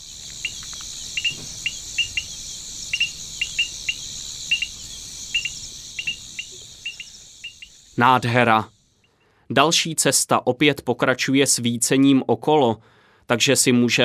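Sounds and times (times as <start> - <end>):
crickets chirping at night in open natural country: 0.0 - 9.4
speech: 8.0 - 8.8, 9.5 - 14.0.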